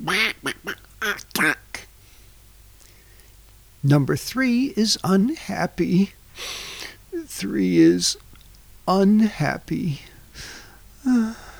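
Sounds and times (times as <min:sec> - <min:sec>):
duck quacking: 0:00.0 - 0:01.9
speech: 0:03.8 - 0:06.6, 0:07.4 - 0:10.6.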